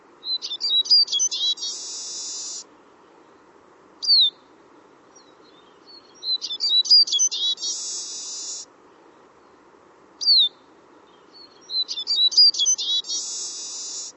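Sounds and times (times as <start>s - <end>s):
bird calls of sharp high chirps ending in a buzzy trill: 0.2s - 2.6s, 5.2s - 8.6s, 10.2s - 10.6s, 11.2s - 14.1s
thin slurred bird notes: 0.2s - 9.6s, 10.2s - 14.1s.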